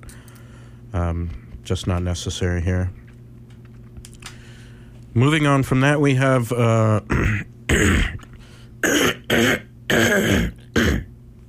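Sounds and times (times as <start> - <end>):
speech: 1.0 - 3.0, 5.2 - 10.6
person coughing: 7.1 - 8.2, 8.8 - 11.1
throat clearing: 7.1 - 11.1.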